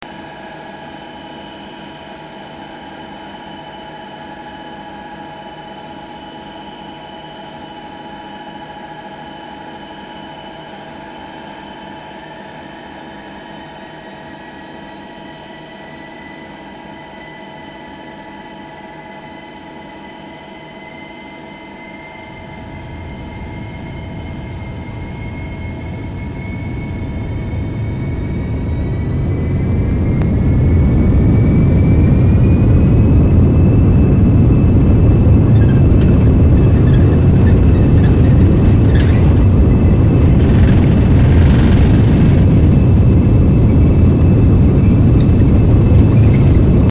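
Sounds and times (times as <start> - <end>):
MD11 aircraft interior noise: 22.3 - 46.8.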